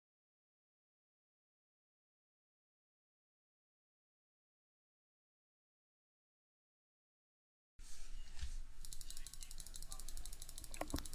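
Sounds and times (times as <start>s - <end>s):
soft noise: 7.8s - 11.1s
computer mouse clicking rapidly during a clicking game: 8.8s - 11.1s.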